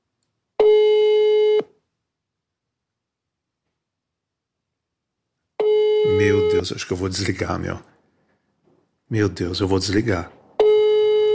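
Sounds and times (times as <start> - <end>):
telephone ringing tone on an outgoing call: 0.6 - 1.7, 5.6 - 6.7, 10.6 - 11.3
speech: 6.6 - 7.9, 9.1 - 10.4.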